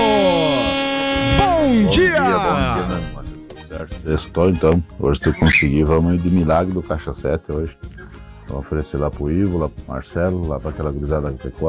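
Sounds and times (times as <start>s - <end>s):
brassy horn honk: 0.0s - 3.6s
speech: 1.9s - 7.9s, 8.5s - 11.6s.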